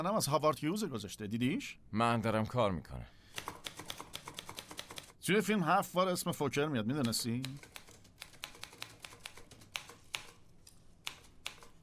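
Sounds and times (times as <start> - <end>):
speech: 0.0 - 3.5, 5.3 - 7.7
typing on a keyboard: 3.4 - 5.1, 7.0 - 10.4.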